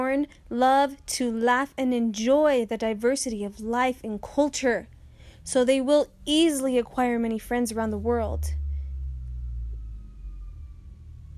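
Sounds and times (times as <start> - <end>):
low rumble of traffic or engine noise: 0.0 - 11.3
speech: 0.1 - 8.6
emergency vehicle siren wailing: 5.0 - 11.3.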